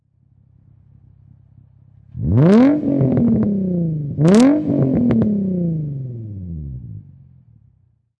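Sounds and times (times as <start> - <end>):
Infinity G35 high performance car exhaust revving: 2.0 - 7.3.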